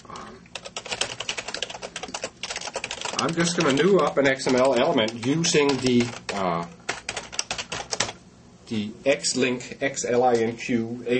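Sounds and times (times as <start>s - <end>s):
rapid typing on a computer keyboard while writing XML code: 0.1s - 8.2s
speech: 3.2s - 6.8s, 8.7s - 11.1s.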